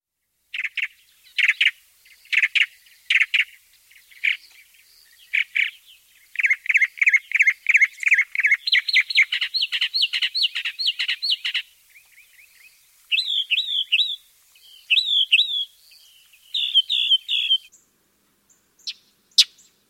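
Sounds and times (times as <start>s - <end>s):
northern mockingbird: 0.6s - 17.7s.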